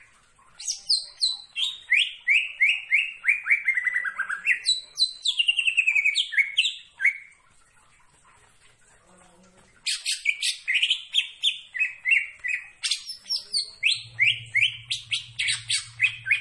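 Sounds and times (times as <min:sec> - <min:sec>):
leafbird singing descending whistled notes: 0:00.6 - 0:07.3, 0:09.9 - 0:16.3.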